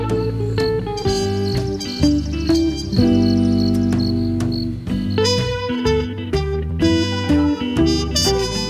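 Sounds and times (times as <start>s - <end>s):
bright instrumental music: 0.0s - 8.6s
grasshopper chirping in high-pitched pulses: 1.1s - 5.5s.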